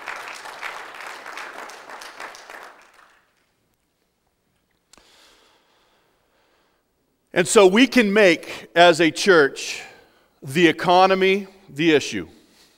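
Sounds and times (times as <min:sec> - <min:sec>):
room full of people applauding: 0:00.0 - 0:03.6
speech: 0:07.4 - 0:12.4.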